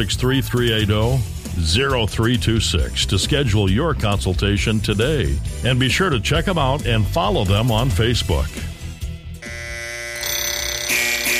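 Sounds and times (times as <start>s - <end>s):
speech: 0.0s - 8.7s
alarm clock ringing with bright electronic tones: 9.4s - 11.3s.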